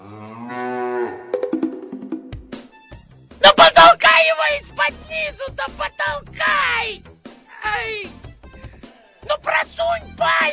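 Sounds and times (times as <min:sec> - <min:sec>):
cow in a herd mooing on a sloping riverbank: 0:00.0 - 0:01.4
speech: 0:04.4 - 0:08.2, 0:09.4 - 0:10.5.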